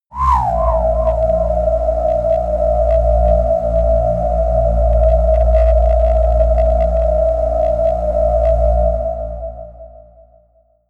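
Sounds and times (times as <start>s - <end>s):
air drone whistle: 0.1s - 10.6s.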